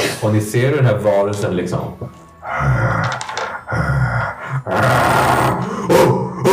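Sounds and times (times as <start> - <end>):
speech: 0.2 - 3.2
dog snarling and growling: 2.4 - 6.5.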